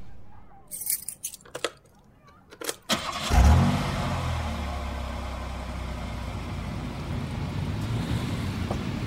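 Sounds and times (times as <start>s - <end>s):
keys jingling: 0.7s - 2.0s
car engine starting and driving out of a parking lot: 2.9s - 9.0s.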